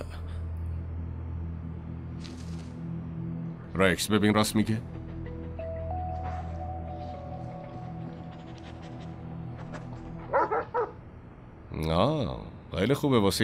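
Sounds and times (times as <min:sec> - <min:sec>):
low hum: 0:00.0 - 0:04.0, 0:04.7 - 0:12.7
steady tones: 0:00.0 - 0:13.4
speech: 0:03.8 - 0:05.0, 0:11.9 - 0:13.4
dog barking: 0:10.3 - 0:11.0.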